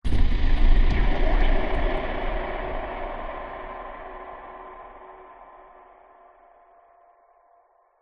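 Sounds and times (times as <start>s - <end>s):
cinematic hit boom with bright airy tail: 0.0s - 5.9s.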